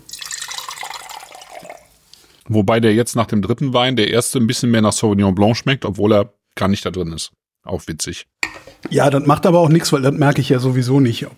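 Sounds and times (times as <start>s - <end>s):
water swirling as a wine glass is rinsed at a wine tasting: 0.0s - 2.0s
speech: 2.5s - 11.3s.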